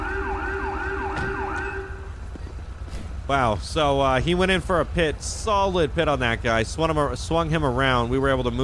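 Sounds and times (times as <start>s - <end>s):
police car siren yelping: 0.0s - 2.2s
low steady engine rumble: 0.0s - 8.6s
speech: 3.3s - 8.6s.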